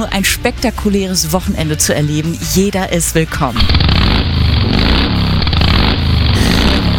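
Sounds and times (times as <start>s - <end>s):
speech: 0.0s - 4.9s
motorcycle engine revving: 3.4s - 6.9s.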